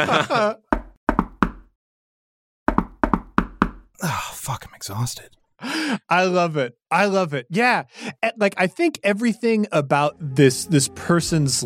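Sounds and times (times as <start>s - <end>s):
speech: 0.0s - 0.6s, 4.0s - 11.6s
laughter: 0.0s - 0.7s
knocking on a door: 0.7s - 1.7s, 2.7s - 3.9s.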